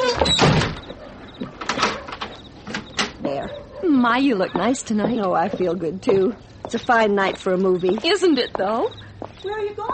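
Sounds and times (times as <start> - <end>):
door swinging shut with a solid thud: 0.0 - 3.2
speech: 4.0 - 9.9.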